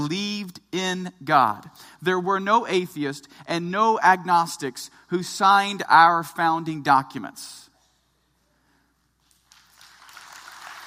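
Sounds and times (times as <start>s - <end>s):
speech: 0.0s - 7.6s
audience applause: 9.5s - 10.8s.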